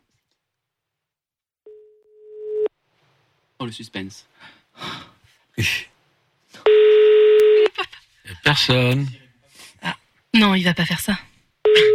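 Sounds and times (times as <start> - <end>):
telephone ringing after call button pressed: 1.7 - 2.7, 6.7 - 7.7, 11.7 - 11.9
speech: 3.6 - 5.0, 5.6 - 5.9, 8.5 - 9.2, 10.4 - 11.9.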